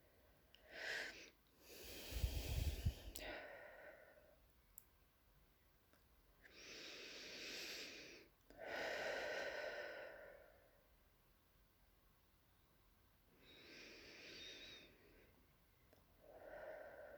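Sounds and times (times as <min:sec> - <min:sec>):
faint slow breathing in through the nose and out through the mouth: 0:00.6 - 0:04.4, 0:06.5 - 0:10.8, 0:13.4 - 0:15.4, 0:16.2 - 0:17.1.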